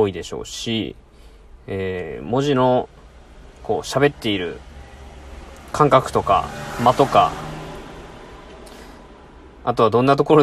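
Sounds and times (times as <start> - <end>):
speech: 0.0 - 1.0, 1.6 - 3.0, 3.7 - 4.7, 5.7 - 7.4, 9.6 - 10.4
car passing outside: 2.2 - 9.8.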